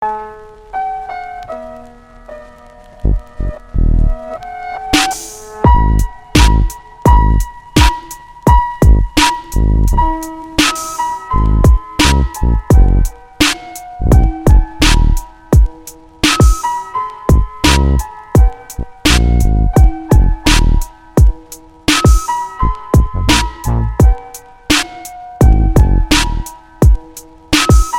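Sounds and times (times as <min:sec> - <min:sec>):
classical piano piece: 0:00.0 - 0:27.9.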